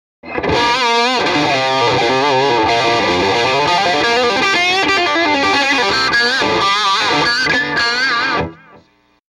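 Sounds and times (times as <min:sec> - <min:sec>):
electric guitar bridge pickup straight into JTM45 amplifier: 0:00.2 - 0:09.2.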